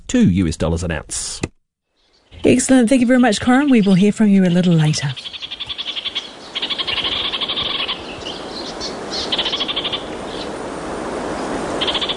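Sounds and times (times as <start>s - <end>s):
speech: 0.1s - 1.5s, 2.4s - 5.4s
steady background hiss: 2.0s - 12.1s
orange-fronted parakeet chattering calls: 2.1s - 10.6s, 11.8s - 12.1s.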